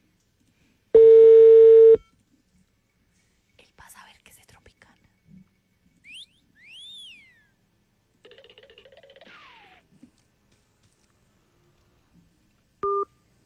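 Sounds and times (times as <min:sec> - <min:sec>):
telephone keypad two-tone dialing beep: 0:01.0 - 0:02.1, 0:12.8 - 0:13.1
warbling, sweeping and chirping sounds: 0:08.2 - 0:09.8.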